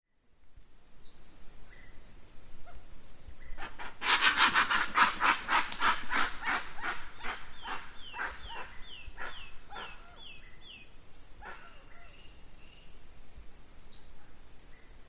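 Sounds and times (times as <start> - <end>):
Penelope obscura Jacuaçu: 3.6 - 10.5, 11.4 - 12.3.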